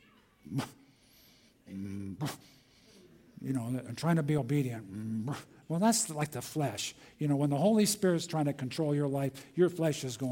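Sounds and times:
person imitating quiet breathy dog whisper barks: 0:00.4 - 0:00.8, 0:01.7 - 0:02.5
speech: 0:00.5 - 0:00.8, 0:03.5 - 0:10.2.

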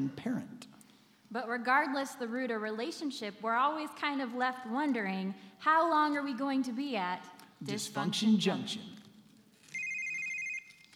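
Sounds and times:
speech: 0:00.0 - 0:00.7, 0:01.3 - 0:09.0
telephone ringing with electronic warble: 0:09.7 - 0:10.9.

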